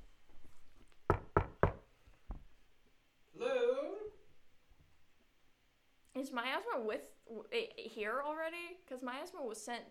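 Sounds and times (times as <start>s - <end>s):
sharp raps on a door: 1.1s - 2.4s
speech: 6.2s - 9.8s.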